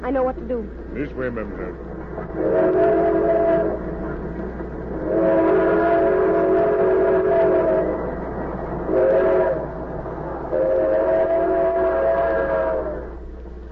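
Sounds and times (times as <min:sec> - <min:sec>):
train rumbling along the tracks at night: 0:00.0 - 0:13.7
speech: 0:00.1 - 0:03.1
train horn blasts: 0:02.4 - 0:04.0, 0:05.0 - 0:08.1, 0:08.8 - 0:09.8, 0:10.5 - 0:13.2.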